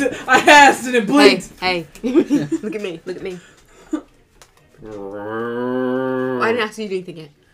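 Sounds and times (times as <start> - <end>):
speech: 0.0 - 4.1, 4.8 - 5.8, 6.4 - 7.4
cow mooing: 4.8 - 6.6.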